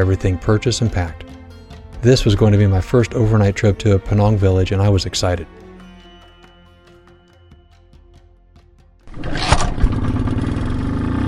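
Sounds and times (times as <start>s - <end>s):
speech: 0.0s - 1.2s, 2.0s - 5.6s
motorcycle engine starting and idling with throttle blips: 9.1s - 11.2s.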